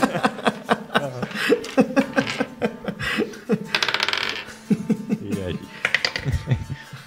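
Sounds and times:
players laughing: 0:00.0 - 0:07.0
dice rattling and clattering across a table for an initiative roll: 0:03.7 - 0:04.6, 0:05.8 - 0:06.3.

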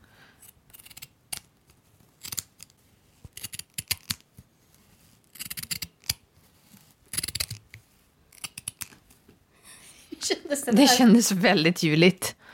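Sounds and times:
scissors cutting coarse burlap fabric: 0:00.4 - 0:01.5, 0:02.2 - 0:02.7, 0:03.3 - 0:04.2, 0:05.2 - 0:06.3, 0:07.1 - 0:09.0
speech: 0:10.3 - 0:12.4.

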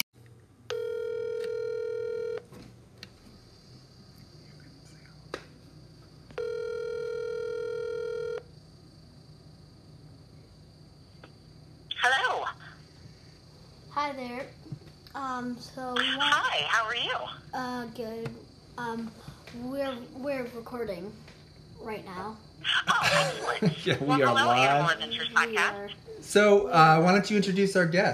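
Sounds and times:
phone line ringing as a call is placed: 0:00.7 - 0:02.5, 0:06.4 - 0:08.5
speech: 0:15.2 - 0:28.1
laughter: 0:22.9 - 0:24.2.

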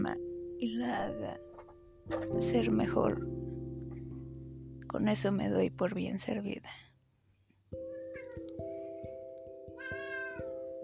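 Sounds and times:
speech: 0:00.0 - 0:01.5, 0:02.1 - 0:03.5, 0:04.9 - 0:06.9
cats meowing: 0:07.8 - 0:08.6, 0:09.7 - 0:10.6.

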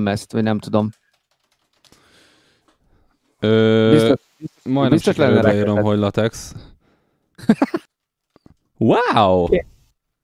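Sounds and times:
speech: 0:00.0 - 0:01.0, 0:03.4 - 0:06.8, 0:07.4 - 0:07.9, 0:08.8 - 0:09.7
rapid typing on a computer keyboard: 0:00.7 - 0:02.8
laughter: 0:07.4 - 0:07.9.

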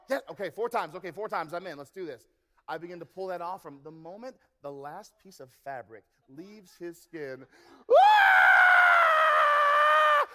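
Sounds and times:
speech: 0:00.1 - 0:08.0
child screaming: 0:07.9 - 0:10.3.

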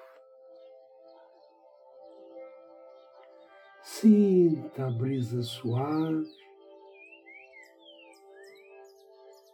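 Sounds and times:
birds singing: 0:00.0 - 0:09.5
speech: 0:03.8 - 0:06.4.

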